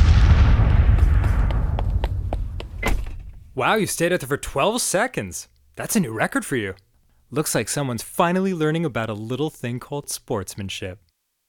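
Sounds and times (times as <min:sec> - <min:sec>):
big rumbling grenade blast in a sports game: 0:00.0 - 0:03.6
quick series of sharp popping grenade bangs: 0:00.0 - 0:03.6
speech: 0:03.6 - 0:11.0.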